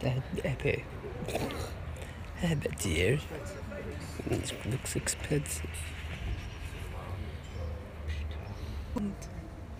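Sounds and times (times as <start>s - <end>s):
speech: 0.0s - 1.6s, 2.4s - 6.0s, 9.0s - 9.4s
approaching train rumbling along the rails: 4.0s - 8.0s.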